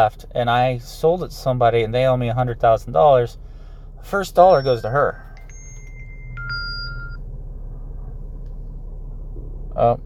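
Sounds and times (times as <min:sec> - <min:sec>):
speech: 0:00.0 - 0:03.4, 0:04.0 - 0:05.3, 0:09.8 - 0:10.0
low hum inside a vehicle: 0:02.1 - 0:10.0
cell phone text message alert chiming inside a vehicle: 0:04.4 - 0:07.2.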